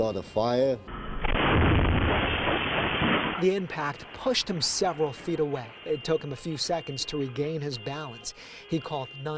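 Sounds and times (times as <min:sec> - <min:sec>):
speech: 0:00.0 - 0:01.7, 0:03.4 - 0:09.3
house exploding across the street: 0:01.1 - 0:05.4.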